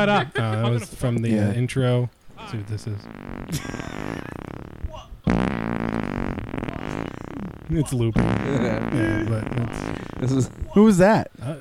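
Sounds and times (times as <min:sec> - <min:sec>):
speech: 0:00.0 - 0:04.4, 0:07.7 - 0:11.5
loud buzzy recorded fart sound played back: 0:02.4 - 0:11.2.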